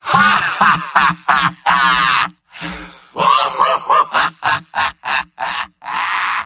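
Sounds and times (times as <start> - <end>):
medic laughing: 0.0 - 2.4, 3.2 - 6.4.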